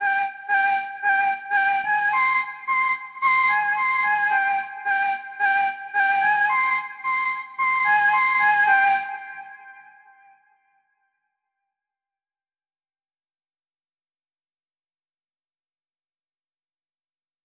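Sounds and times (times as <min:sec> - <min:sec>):
lotus flute melody in G minor: 0:00.0 - 0:10.5.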